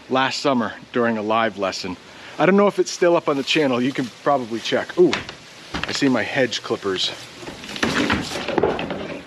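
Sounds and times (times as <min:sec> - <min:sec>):
speech: 0:00.1 - 0:07.3
wooden shed door creaking and scraping open: 0:07.4 - 0:09.2.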